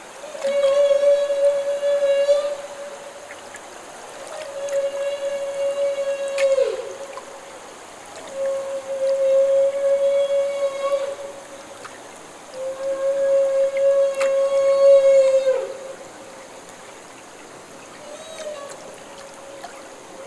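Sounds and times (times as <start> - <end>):
humpback whale feeding calls during bubble-net feeding: 0.1 - 7.4, 8.2 - 11.9, 12.6 - 16.2, 17.8 - 20.2.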